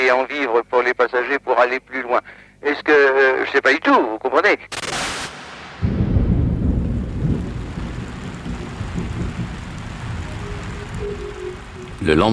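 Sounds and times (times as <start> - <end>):
speech: 0.1 - 6.0, 12.0 - 12.3
low rumble of thunder: 5.8 - 12.1
fine rain falling in Kampala Uganda: 5.8 - 12.3.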